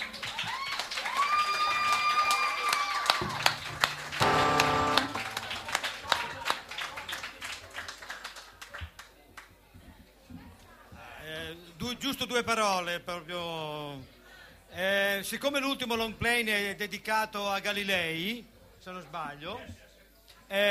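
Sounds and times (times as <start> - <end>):
audience applauding: 0.0 - 9.1
sustained tone: 4.0 - 5.7
speech: 12.3 - 14.1, 14.8 - 19.8.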